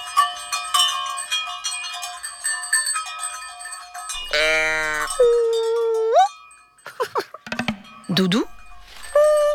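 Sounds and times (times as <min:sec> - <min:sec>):
many cowbells worn by a herd of cows clanging: 0:00.0 - 0:09.5
long drawn-out moo-like bellow: 0:04.2 - 0:05.2
scattered knocks: 0:07.5 - 0:07.9
speech: 0:08.2 - 0:08.6.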